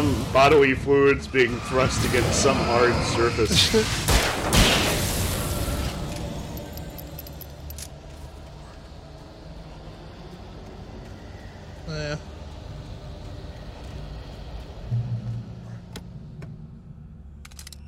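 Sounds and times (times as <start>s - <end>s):
rumbling video game soundscape: 0.0s - 17.8s
speech: 0.3s - 4.6s
video game gunshot sound effects: 4.0s - 5.4s.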